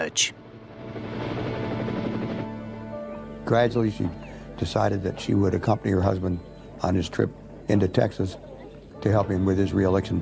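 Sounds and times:
speech: 0.0 - 0.4, 3.5 - 10.2
military helicopter landing with rotor and engine drone: 0.9 - 2.9.

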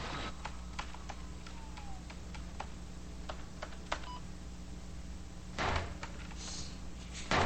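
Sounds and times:
steady low electrical hum: 0.0 - 7.4
typing on a computer keyboard in an office: 0.4 - 4.2.

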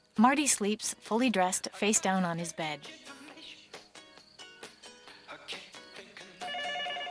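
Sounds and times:
speech: 0.2 - 3.2
cordless phone ringing with electronic trill in a bedroom: 6.5 - 7.1.

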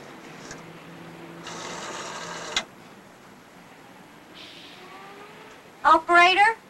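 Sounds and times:
rotary telephone dial on a coin phone turned to zero: 1.4 - 2.7.

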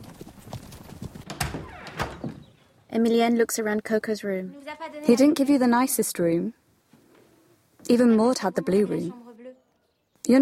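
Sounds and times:
horses' hooves clip-clopping as a riding party sets off: 0.0 - 1.6
speech: 3.0 - 6.6, 7.9 - 9.2, 10.2 - 10.4.

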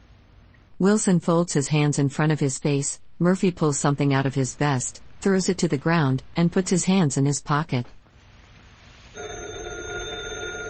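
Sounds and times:
speech: 0.8 - 8.0
telephone bell ringing: 9.2 - 10.6.

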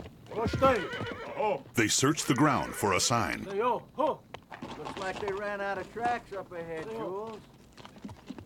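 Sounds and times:
horse whinnying: 0.4 - 1.4
speech: 0.5 - 4.2, 4.8 - 7.6.

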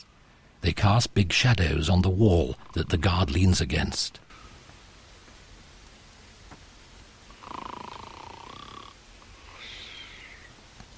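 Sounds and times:
speech: 0.0 - 4.2
man snoring while asleep in chair: 7.3 - 9.7.

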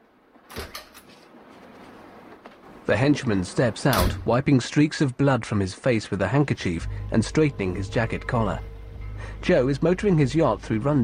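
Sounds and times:
door to a small room opening with a creak: 0.5 - 1.2
speech: 2.9 - 8.7, 9.4 - 11.0.

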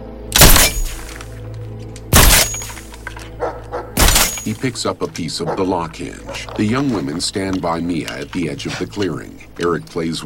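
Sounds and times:
nail gun firing to repair a broken door on a ramshackle cabin: 0.4 - 1.0, 2.1 - 2.7, 4.0 - 4.5
speech: 4.4 - 10.2.

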